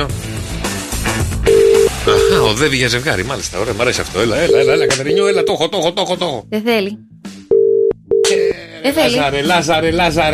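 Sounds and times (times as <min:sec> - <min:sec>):
music: 0:00.0 - 0:10.3
electronic telephone ringback tone: 0:01.5 - 0:02.6, 0:04.4 - 0:05.7, 0:07.5 - 0:08.5
speech: 0:02.3 - 0:07.1, 0:08.8 - 0:10.3.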